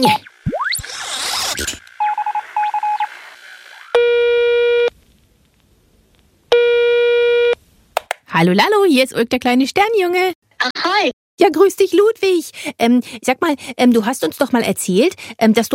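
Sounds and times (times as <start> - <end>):
speech: 0.0 - 0.3, 8.4 - 15.7
whooshing electronic chirps: 0.0 - 4.0
telephone buzzing tones: 0.0 - 4.9, 6.5 - 7.6.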